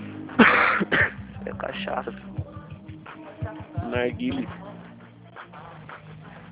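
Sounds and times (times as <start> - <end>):
harsh raspy cough: 0.4 - 1.3
speech: 1.5 - 2.5, 3.9 - 4.6.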